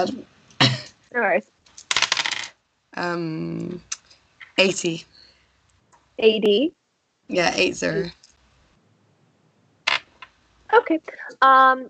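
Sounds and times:
speech: 0.0s - 0.3s, 1.1s - 1.6s, 3.0s - 3.9s, 4.6s - 5.2s, 6.2s - 8.2s, 10.7s - 11.8s
dice rattling and tumbling across a tabletop: 1.8s - 2.5s.

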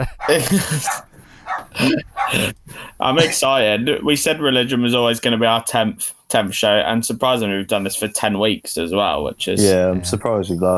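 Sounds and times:
speech: 0.0s - 1.1s, 1.8s - 10.7s
dog barking and yipping: 0.0s - 3.2s
laughter: 0.0s - 5.6s, 7.2s - 10.3s.

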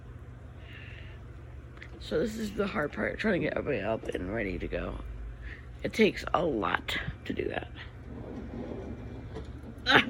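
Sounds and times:
speech: 2.0s - 5.1s, 5.8s - 7.9s, 9.9s - 10.0s
stuck door being forced open, scraping and rattling: 8.0s - 10.0s.

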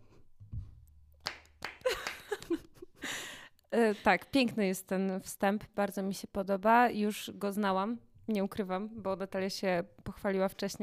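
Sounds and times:
hand clapping applause: 1.2s - 2.7s
speech: 3.7s - 10.8s.

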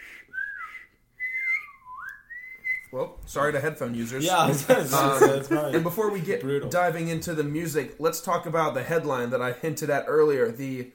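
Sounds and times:
breathy whistling on an inhaled breath: 0.0s - 2.9s
speech: 2.9s - 10.9s
laughter: 4.2s - 6.2s.

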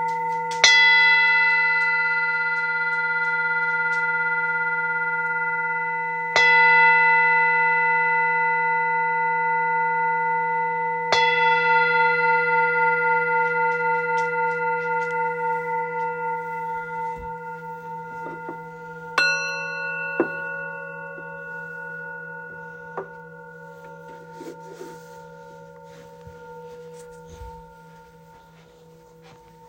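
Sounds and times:
Tibetan singing bowls struck: 0.0s - 29.6s
low steady hum: 13.5s - 29.6s.

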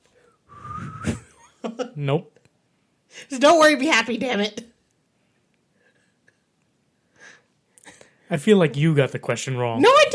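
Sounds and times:
person whistling a tune: 0.5s - 1.3s
speech: 1.7s - 2.4s, 3.1s - 4.7s, 8.3s - 10.1s.

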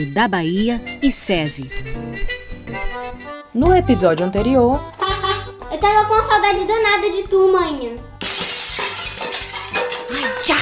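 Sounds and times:
speech: 0.0s - 2.4s, 3.5s - 5.0s, 5.8s - 8.1s, 10.1s - 10.6s
box of broken glass shards crashing: 8.2s - 10.6s.

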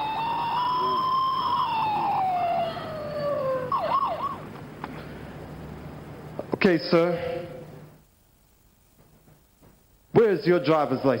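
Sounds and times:
police car siren: 0.0s - 4.6s
speech: 6.6s - 7.5s, 10.4s - 11.1s.

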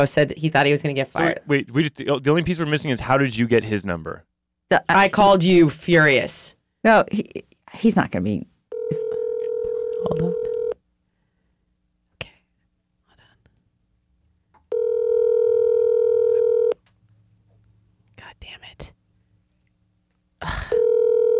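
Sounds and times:
speech: 0.0s - 9.0s
electronic ringback tone of an outgoing phone call: 8.7s - 10.8s, 14.7s - 16.8s, 20.7s - 21.3s.

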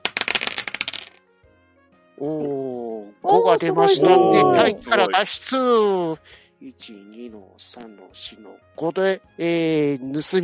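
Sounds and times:
dice clattering across a hard surface: 0.0s - 1.2s
speech: 2.2s - 2.6s, 3.2s - 10.4s
laughter: 2.2s - 8.4s.

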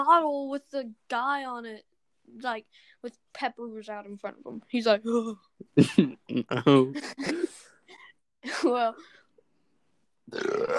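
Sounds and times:
speech: 0.0s - 7.7s, 8.4s - 9.2s, 10.3s - 10.7s
loud burp: 5.8s - 6.9s, 10.3s - 10.7s.

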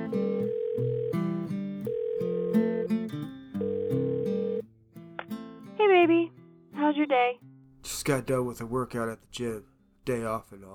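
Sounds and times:
cell phone call ringing on the line: 0.0s - 3.0s, 3.6s - 4.6s
speech: 7.0s - 7.4s, 8.0s - 10.7s.

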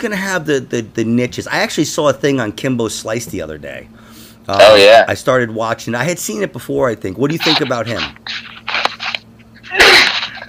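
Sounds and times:
speech: 0.0s - 8.5s
loud human sneeze with breathy intake: 7.9s - 10.4s.

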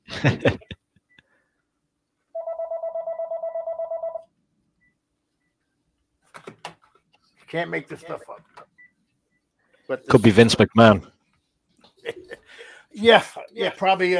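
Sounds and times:
laughter: 0.0s - 0.8s, 11.9s - 12.7s
speech: 0.2s - 0.7s, 7.5s - 8.4s, 9.9s - 11.2s, 13.0s - 14.1s
landline telephone ringing with electronic trill: 2.4s - 4.3s.

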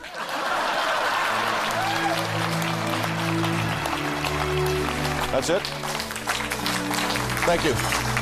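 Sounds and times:
audience chuckling: 0.0s - 1.8s
audience clapping: 0.0s - 8.2s
speech: 5.4s - 6.0s, 7.5s - 8.1s.

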